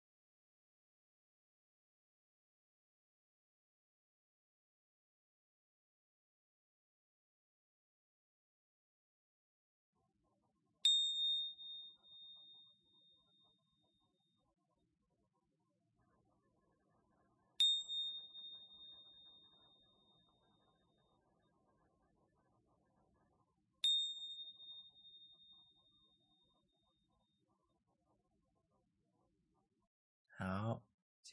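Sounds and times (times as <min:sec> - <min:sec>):
meditation bell ringing: 0:10.8 - 0:14.0, 0:17.6 - 0:21.1, 0:23.8 - 0:26.4
speech: 0:30.4 - 0:31.3.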